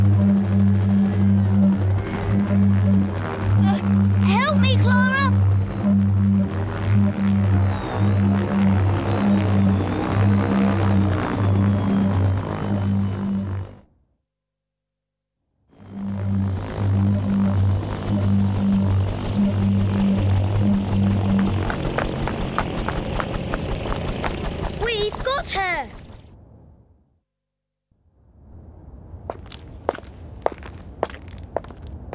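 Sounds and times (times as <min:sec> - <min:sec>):
helicopter flying with low rotor throb and rushing engine noise: 0:00.0 - 0:14.0, 0:15.6 - 0:26.6.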